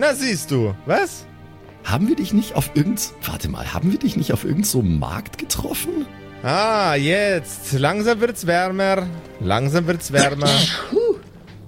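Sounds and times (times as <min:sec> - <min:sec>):
speech: 0:00.0 - 0:11.0
sneeze: 0:10.2 - 0:11.2.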